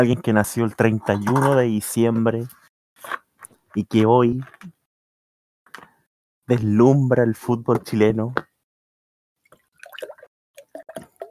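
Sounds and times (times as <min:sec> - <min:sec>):
speech: 0:00.0 - 0:04.8, 0:06.5 - 0:08.5
water glugging out of a bottle: 0:09.5 - 0:11.2.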